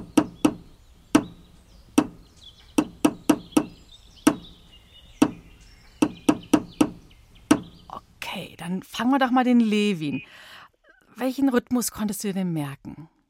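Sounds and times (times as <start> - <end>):
hammer blows on wood: 0.0 - 1.4, 2.0 - 2.2, 2.8 - 4.6, 5.2 - 5.4, 6.0 - 7.8
speech: 8.6 - 10.5, 11.2 - 13.1.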